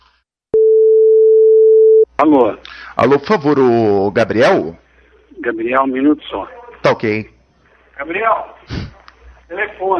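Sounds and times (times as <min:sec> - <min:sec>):
telephone call tone while dialing a phone: 0:00.6 - 0:02.1
speech: 0:02.2 - 0:07.3, 0:08.0 - 0:08.9, 0:09.5 - 0:09.9.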